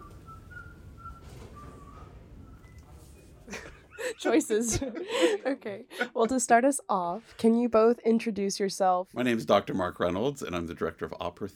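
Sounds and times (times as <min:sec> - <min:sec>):
person whistling a soft wandering tune in a hallway: 0:00.0 - 0:02.9
laughter: 0:03.5 - 0:06.6
speech: 0:04.2 - 0:11.5.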